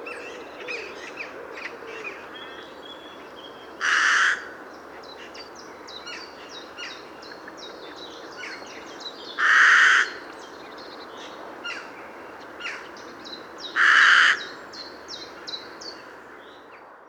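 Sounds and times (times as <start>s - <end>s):
carrion crow cawing: 3.8s - 4.6s, 9.4s - 10.2s, 13.8s - 14.5s.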